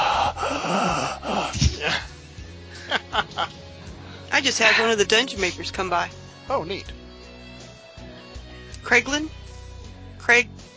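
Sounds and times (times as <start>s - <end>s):
heavy breathing blowing into the microphone: 0.0s - 3.1s, 3.9s - 4.3s
laughter: 2.7s - 3.8s
speech: 4.4s - 7.0s, 8.9s - 9.5s, 10.3s - 10.6s.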